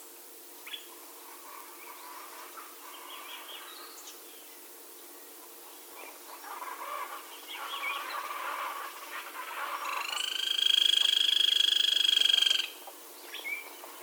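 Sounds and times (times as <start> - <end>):
grey-crowned woodpecker calling with a fast pulsed trill: 6.4 - 12.8.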